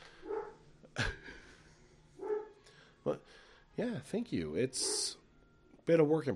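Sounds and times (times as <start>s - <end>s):
dog barking sharply: 0.2s - 0.6s, 2.2s - 2.6s, 4.8s - 5.2s
speech: 3.8s - 5.2s, 5.9s - 6.3s.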